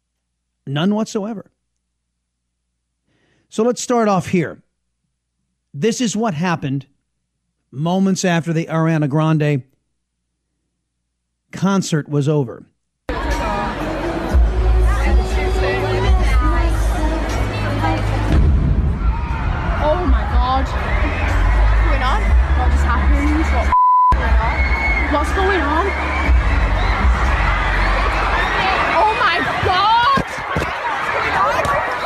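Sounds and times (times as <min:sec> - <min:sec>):
speech: 0:00.7 - 0:01.6, 0:03.5 - 0:04.7, 0:05.7 - 0:07.0, 0:07.7 - 0:09.7, 0:11.5 - 0:12.7
large concert crowd screaming and shouting in panic after an explosion: 0:13.1 - 0:32.0.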